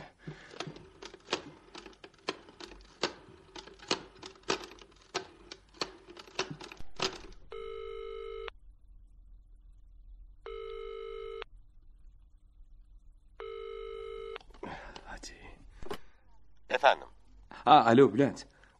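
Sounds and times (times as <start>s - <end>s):
hotel telephone dialing clicks: 0.5s - 8.5s
loud electronic hotel telephone rings: 7.0s - 8.5s, 10.5s - 11.5s, 13.4s - 14.4s
speech: 16.9s - 17.1s, 17.7s - 18.5s.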